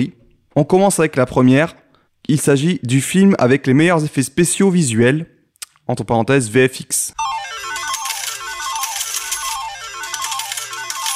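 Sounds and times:
speech: 0:00.0 - 0:05.3, 0:05.9 - 0:07.6
electronic slot-machine jackpot jingle with shimmering chimes: 0:07.2 - 0:11.1.

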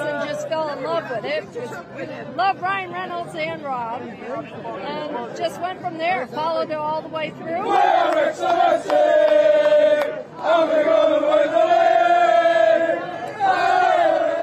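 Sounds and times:
large crowd chanting and singing at team bus parade: 0:00.0 - 0:01.4, 0:07.2 - 0:14.4
speech: 0:00.8 - 0:12.2.

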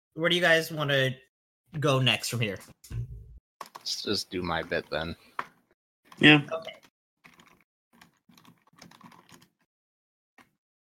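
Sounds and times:
speech: 0:00.2 - 0:03.2, 0:03.9 - 0:05.3, 0:06.2 - 0:06.8
fast loud typing on a computer keyboard: 0:03.6 - 0:03.9, 0:07.2 - 0:09.7.

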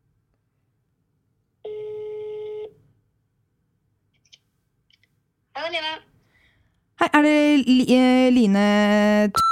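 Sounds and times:
phone call electronic ringing tone: 0:01.6 - 0:02.7
speech: 0:05.7 - 0:06.1, 0:07.0 - 0:09.4.

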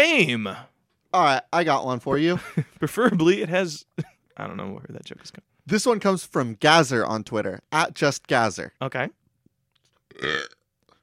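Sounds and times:
speech: 0:00.1 - 0:09.2, 0:10.1 - 0:10.6
loud burp with a rough throaty rumble: 0:10.1 - 0:10.7.

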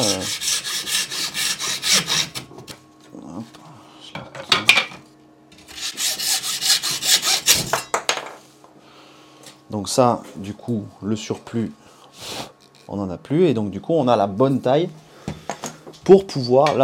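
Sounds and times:
hacksaw cutting through metal rail: 0:00.0 - 0:02.4, 0:05.7 - 0:07.9
speech: 0:09.8 - 0:11.8, 0:12.9 - 0:15.0, 0:16.1 - 0:16.8.

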